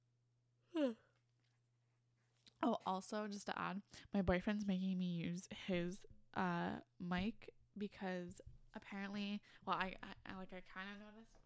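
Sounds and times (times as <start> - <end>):
person yawning: 0.7 - 1.1
speech: 2.6 - 11.4.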